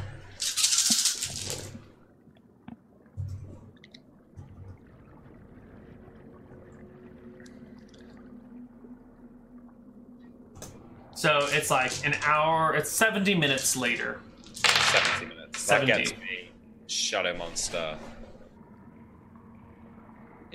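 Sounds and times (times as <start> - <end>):
quiet low hum: 0.0 - 20.5
handful of dice clattering as tossed and settling: 0.4 - 1.6, 14.5 - 15.2
speech: 11.2 - 14.3, 15.7 - 16.3, 17.1 - 18.2.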